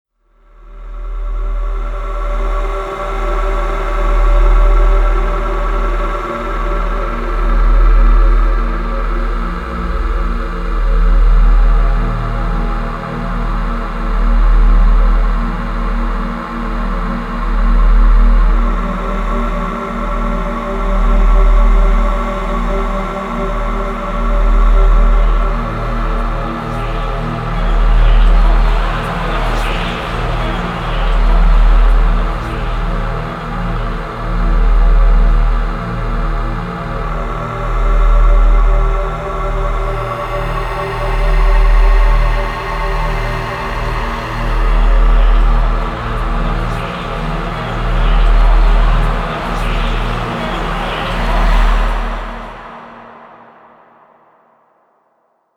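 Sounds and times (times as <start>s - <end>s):
horror drone: 0.3s - 54.9s.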